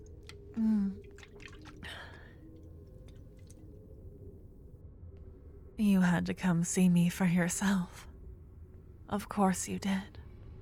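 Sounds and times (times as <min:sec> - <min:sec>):
sipping drinking water: 0:00.0 - 0:03.7
speech: 0:00.6 - 0:01.0, 0:05.8 - 0:08.1, 0:09.1 - 0:10.2.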